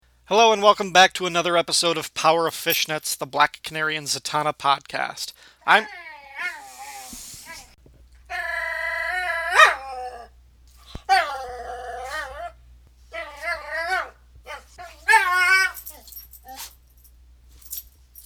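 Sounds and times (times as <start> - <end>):
speech: 0.3 - 6.6
dog whimpering: 5.8 - 10.3, 11.1 - 12.6, 13.2 - 16.7
dog barking and yipping: 9.4 - 10.2, 11.0 - 16.8.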